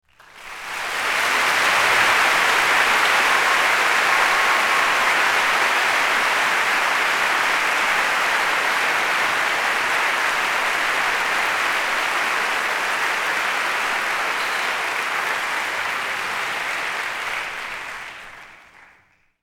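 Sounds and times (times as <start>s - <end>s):
crowd applause: 0.0s - 19.4s.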